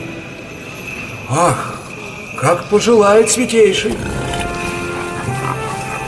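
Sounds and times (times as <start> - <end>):
speech: 1.3 - 1.8, 2.4 - 4.2
pigs grunting and snorting: 3.7 - 6.0.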